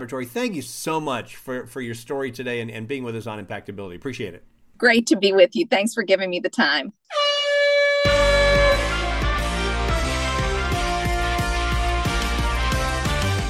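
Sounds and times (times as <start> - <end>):
speech: 0.0 - 7.3
air horn blast: 7.1 - 13.4
steady drum beat: 8.1 - 13.4
upbeat music: 8.1 - 13.4.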